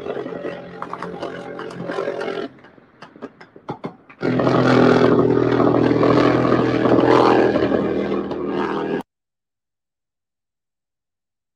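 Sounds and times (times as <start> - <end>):
helicopter rotor roaring in combat footage: 0.0 - 3.4, 4.1 - 9.0.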